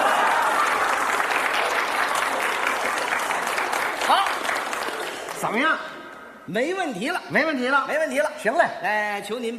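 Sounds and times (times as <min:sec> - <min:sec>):
audience including children applauding: 0:00.0 - 0:05.6
speech: 0:05.5 - 0:05.9, 0:06.5 - 0:09.5.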